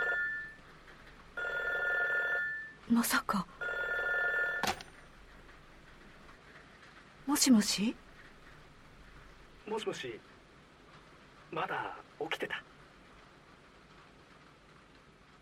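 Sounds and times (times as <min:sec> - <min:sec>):
telephone ringing in electronic trills: 0:00.0 - 0:00.6, 0:01.4 - 0:02.8, 0:03.6 - 0:05.0
speech: 0:02.9 - 0:03.6, 0:07.4 - 0:08.0, 0:09.7 - 0:10.3, 0:11.5 - 0:12.7.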